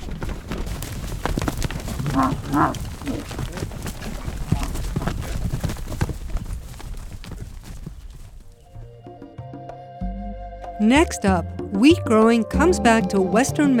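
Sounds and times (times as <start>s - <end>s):
heifers stampeding hooves clattering: 0.0s - 9.0s
heifer bellowing: 1.5s - 5.7s
speech: 2.2s - 3.9s, 10.8s - 13.7s.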